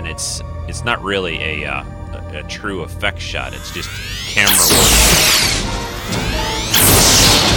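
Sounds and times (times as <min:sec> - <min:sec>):
speech: 0:00.2 - 0:06.2
sci-fi energy weapon blast fired by an automated security defense: 0:03.7 - 0:07.5.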